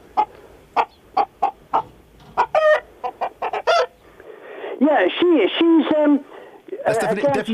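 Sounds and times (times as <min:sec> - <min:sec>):
hen cackling after laying an egg: 0:00.0 - 0:04.3
speech: 0:05.0 - 0:06.3, 0:06.9 - 0:07.5.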